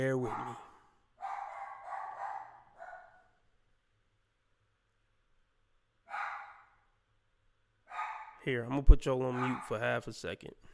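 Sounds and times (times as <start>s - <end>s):
speech: 0.0s - 0.7s, 8.4s - 10.7s
dog barking: 0.0s - 3.4s, 6.1s - 6.9s, 7.9s - 8.5s, 9.2s - 10.0s.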